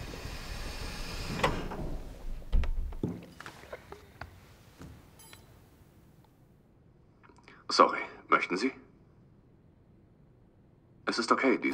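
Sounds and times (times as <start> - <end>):
doors opening with a clunky mechanical rumble: 0.0 - 3.3
speech: 7.8 - 8.8, 11.2 - 11.7.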